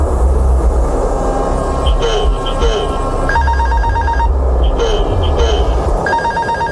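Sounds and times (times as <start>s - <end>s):
loud steady roar of aircraft noise: 0.0s - 6.7s
voices: 1.9s - 3.4s, 4.6s - 6.0s
cockpit call bell ringing in short electronic bursts: 3.4s - 4.9s, 6.1s - 6.7s.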